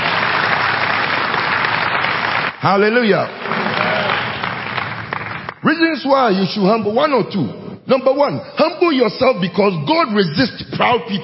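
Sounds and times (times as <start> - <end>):
congregation applauding at a church service: 0.0 - 5.6
speech: 2.6 - 3.6, 5.6 - 11.2.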